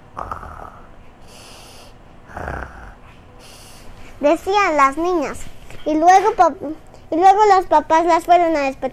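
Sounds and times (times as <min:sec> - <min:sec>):
voice imitating loud snoring: 0:00.1 - 0:03.0
speech: 0:04.2 - 0:08.9.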